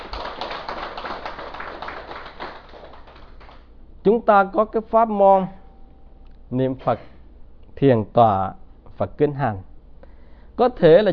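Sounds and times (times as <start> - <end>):
crowd applauding: 0.0 - 3.7
speech: 4.1 - 5.6, 6.5 - 7.1, 7.8 - 9.7, 10.6 - 11.1.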